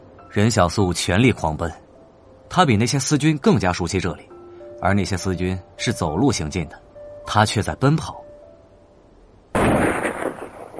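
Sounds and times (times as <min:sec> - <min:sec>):
speech: 0:00.3 - 0:01.8, 0:02.5 - 0:08.2
gunshot at night: 0:09.6 - 0:10.7.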